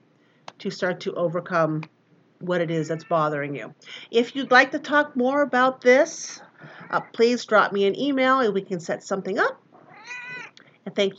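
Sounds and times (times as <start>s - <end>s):
speech: 0.6s - 9.6s, 11.0s - 11.1s
cat meowing: 2.8s - 3.3s, 9.9s - 10.5s.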